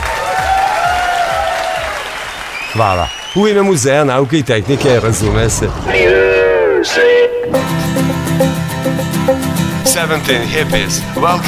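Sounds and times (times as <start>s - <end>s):
audience applause at a science and technology museum event: 0.0s - 3.8s
speech: 2.8s - 11.4s.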